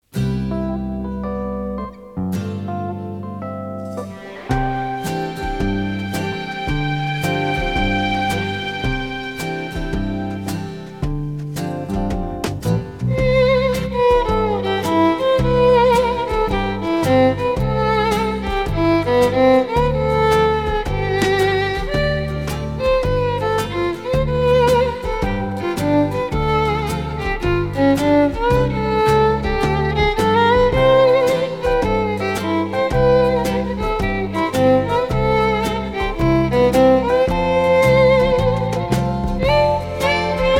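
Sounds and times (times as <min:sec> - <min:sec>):
instrumental song: 0:00.0 - 0:40.5.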